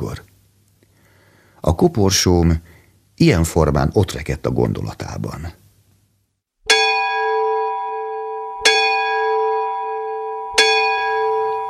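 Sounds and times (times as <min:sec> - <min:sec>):
speech: 0:01.6 - 0:05.6
single large church bell tolling: 0:06.7 - 0:11.6.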